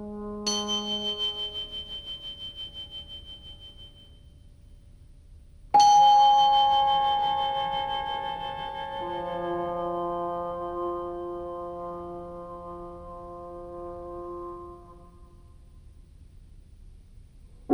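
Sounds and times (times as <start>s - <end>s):
bells ringing: 0.5s - 4.1s, 5.8s - 10.0s.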